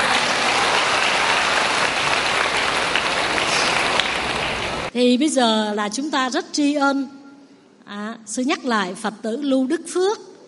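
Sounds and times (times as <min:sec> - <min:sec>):
audience applause: 0:00.0 - 0:04.9
speech: 0:05.0 - 0:07.2, 0:07.9 - 0:10.3.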